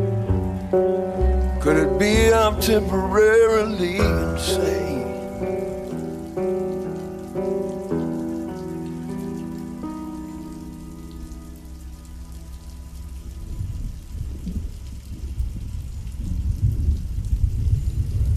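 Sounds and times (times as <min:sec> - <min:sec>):
sustained stepping musical chords from a song: 0:00.0 - 0:13.6
rain falling: 0:00.0 - 0:18.3
speech: 0:01.6 - 0:05.5.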